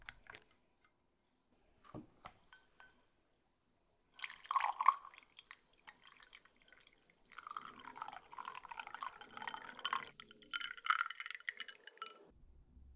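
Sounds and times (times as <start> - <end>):
chuhai pouring into a glass: 4.2 - 12.3.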